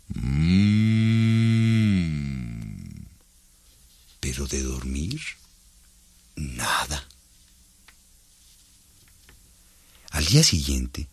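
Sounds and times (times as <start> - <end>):
human voice imitating a bull yawning with a moo: 0.0 - 3.2
speech: 4.4 - 5.5, 6.4 - 7.0, 10.3 - 11.1.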